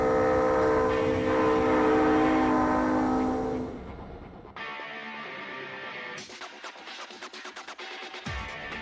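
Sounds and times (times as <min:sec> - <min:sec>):
train chime horn sounding a multi-note chord: 0:00.0 - 0:04.2
passing train rumble and clatter: 0:00.0 - 0:04.7.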